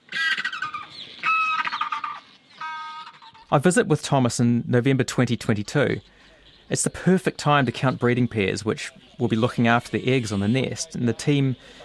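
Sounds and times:
crested penguins calling on a breeding island: 0:00.0 - 0:03.5, 0:07.6 - 0:11.8
speech: 0:03.5 - 0:11.8.

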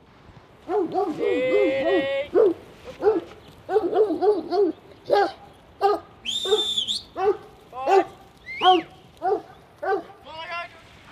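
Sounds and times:
young female heading dog barking near sheep in a farm paddock: 0:00.7 - 0:10.2
speech: 0:00.9 - 0:02.4
high steady whistle: 0:06.2 - 0:07.2.

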